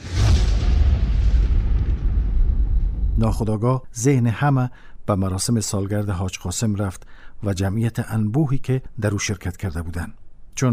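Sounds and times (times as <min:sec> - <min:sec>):
loud explosion with deep sustained rumble: 0:00.0 - 0:03.5
speech: 0:03.2 - 0:10.7.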